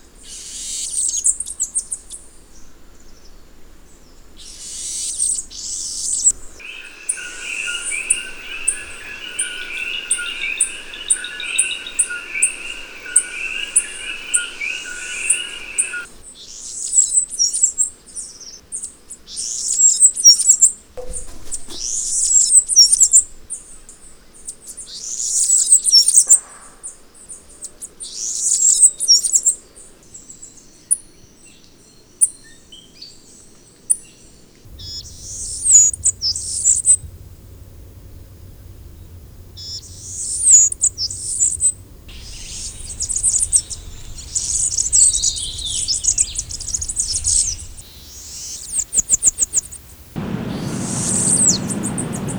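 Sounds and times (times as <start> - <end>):
common yellowthroat singing: 6.6 - 16.2, 34.7 - 52.3.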